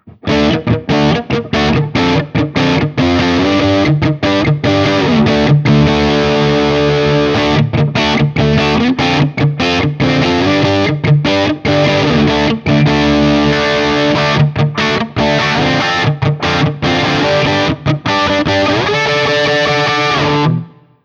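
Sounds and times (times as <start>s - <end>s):
Guild X97V D guitar: 0.0s - 21.0s.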